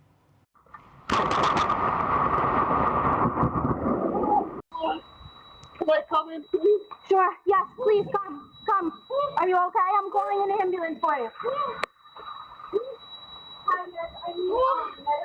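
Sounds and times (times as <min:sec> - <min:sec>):
lightning striking a tree: 0:01.0 - 0:04.6
people talking urgently: 0:04.7 - 0:05.1, 0:05.8 - 0:15.2
speech: 0:06.1 - 0:11.8, 0:13.9 - 0:15.2.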